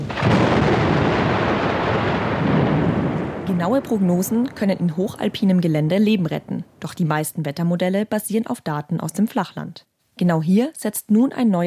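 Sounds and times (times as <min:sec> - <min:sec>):
thunder rumbling: 0:00.0 - 0:07.2
speech: 0:03.6 - 0:11.6.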